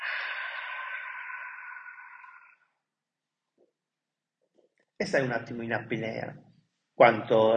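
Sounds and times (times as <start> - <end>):
forceful breathy exhale of a breathing exercise: 0.0 - 2.6
speech: 5.0 - 7.5.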